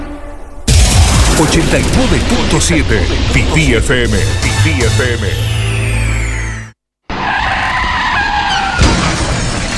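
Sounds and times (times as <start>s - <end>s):
car crash with breaking debris: 0.7s - 4.3s, 8.7s - 9.7s
speech: 1.4s - 5.5s
car tires squealing in a long skid: 7.1s - 9.0s.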